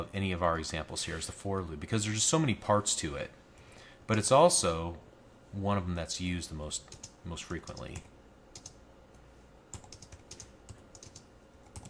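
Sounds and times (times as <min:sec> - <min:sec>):
speech: 0:00.0 - 0:03.4, 0:04.1 - 0:08.1
low hum: 0:00.0 - 0:11.8
person typing a for loop on a computer keyboard: 0:06.9 - 0:08.8, 0:09.7 - 0:11.8.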